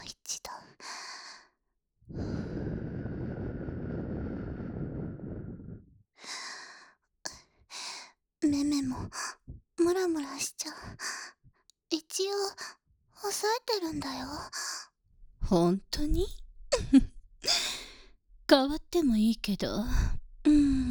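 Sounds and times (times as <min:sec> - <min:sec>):
breath blown softly at the listener: 0:02.2 - 0:05.8
speech: 0:08.5 - 0:09.2, 0:12.2 - 0:14.6, 0:15.5 - 0:17.0, 0:18.5 - 0:20.8.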